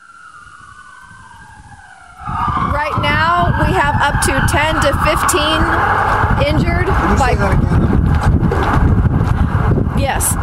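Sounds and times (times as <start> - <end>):
emergency vehicle siren wailing: 0.0 - 9.8
low rumble of engine and traffic noise: 0.0 - 10.4
speech: 3.7 - 9.4, 10.0 - 10.4.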